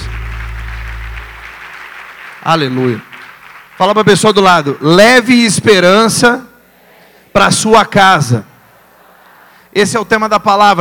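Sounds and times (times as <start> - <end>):
low sustained hum: 0.0 - 2.0
audience applause: 0.0 - 5.0
speech: 2.4 - 3.1, 3.8 - 6.5, 7.4 - 8.5, 9.8 - 10.8.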